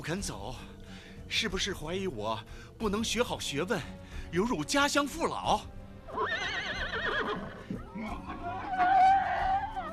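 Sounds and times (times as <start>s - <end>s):
speech: 0.0s - 6.6s
horse neighing: 6.1s - 9.9s.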